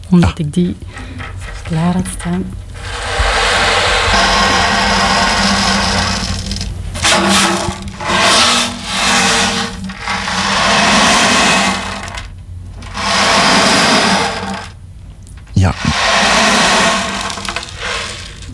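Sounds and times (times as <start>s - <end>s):
speech: 0.1s - 2.6s
small ocean drum beads hissing imitating sea waves: 2.7s - 14.8s, 15.8s - 18.5s.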